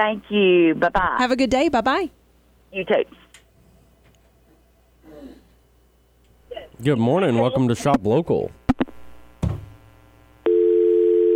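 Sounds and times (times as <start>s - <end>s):
speech: 0.0s - 3.2s, 6.8s - 8.6s
low clunk of phone line disconnecting: 9.4s - 9.8s
telephone dial tone after dropped call: 10.4s - 11.3s.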